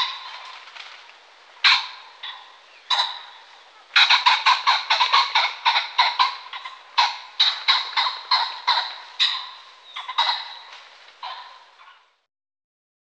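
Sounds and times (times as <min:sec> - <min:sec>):
pheasant cackling: 0:00.0 - 0:12.2.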